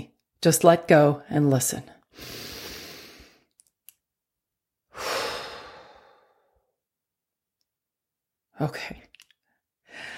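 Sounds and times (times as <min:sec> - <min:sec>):
speech: 0:00.4 - 0:02.4, 0:08.6 - 0:09.0
slow deep breathing: 0:02.1 - 0:03.5, 0:04.9 - 0:06.8, 0:09.8 - 0:10.1.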